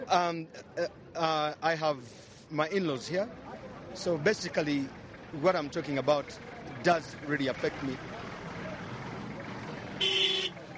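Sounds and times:
speech: 0.1 - 8.3
bus horn honking: 10.0 - 10.6.

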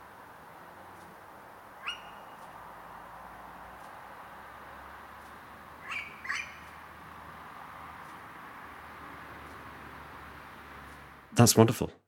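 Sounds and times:
female owl calling in a garden: 1.8 - 2.5, 5.8 - 6.8
speech: 11.4 - 12.0.

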